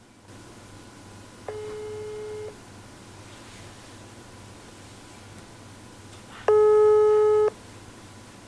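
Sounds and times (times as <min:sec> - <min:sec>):
faint constant hum: 0:00.0 - 0:08.4
outgoing phone call ringing tone: 0:01.5 - 0:02.5, 0:06.5 - 0:07.5.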